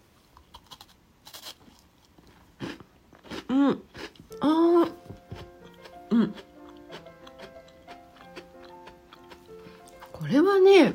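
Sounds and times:
crunching of an assorted sweet with white chocolate: 0.3 - 10.2
speech: 3.5 - 4.8, 6.2 - 6.5
soft clicking chews: 5.8 - 10.2.

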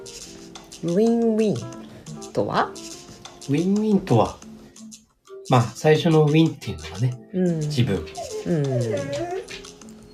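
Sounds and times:
speech: 0.8 - 1.8, 2.4 - 2.9, 3.5 - 4.4, 5.5 - 9.4
dog whining and yelping: 7.7 - 10.1.

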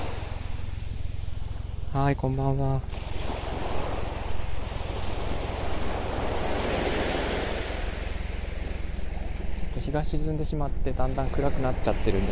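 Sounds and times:
low wind rumble against the microphone: 0.0 - 12.3
ocean surf washing onto a beach at Hayama Japan at dusk: 0.0 - 12.3
speech: 2.0 - 3.2, 9.9 - 12.3.

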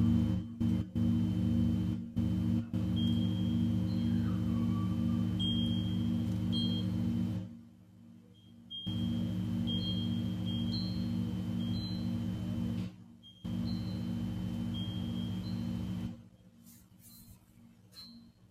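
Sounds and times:
Tibetan singing bowl humming with a deep drone and high ringing: 0.0 - 16.3
small bright pings and chirps: 2.9 - 7.0, 8.3 - 12.4, 13.2 - 16.1.

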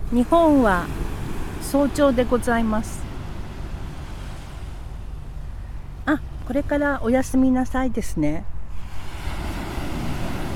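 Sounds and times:
surf washing on a shore: 0.0 - 6.4, 8.7 - 10.5
speech: 0.1 - 1.0, 1.7 - 3.0, 6.1 - 8.5.

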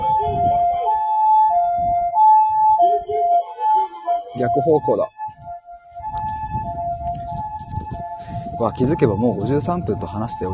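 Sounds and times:
loud two-tone emergency siren: 0.0 - 10.5
low traffic rumble: 0.0 - 10.5
speech: 4.4 - 5.2, 8.6 - 10.5.

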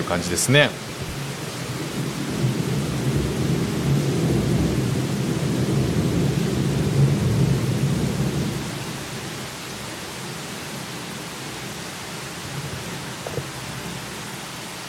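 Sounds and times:
deep continuous rumble of thunder: 0.0 - 9.9, 12.4 - 14.3
steady heavy rain in a thunderstorm: 0.0 - 14.8
speech: 0.1 - 1.1.

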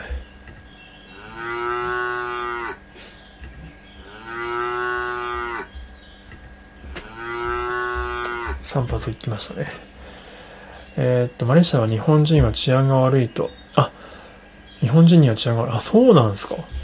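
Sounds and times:
cow mooing: 1.1 - 2.9, 4.0 - 5.8, 6.9 - 8.7
speech: 8.7 - 9.9, 11.0 - 13.9, 14.9 - 16.8.

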